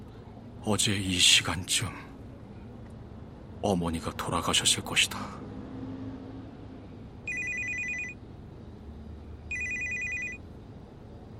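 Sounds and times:
steady low rumble inside a taxi moving slowly across Incheon Bridge in the rain: 0.0 - 11.3
speech: 0.6 - 2.1, 3.6 - 5.4
phone ringing in bright electronic bursts: 7.3 - 8.2, 9.5 - 10.5.

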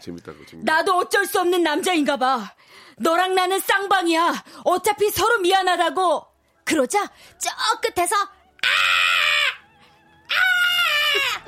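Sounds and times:
speech: 0.0 - 8.9
voice imitating a crow cawing: 8.6 - 9.6, 10.3 - 11.4.

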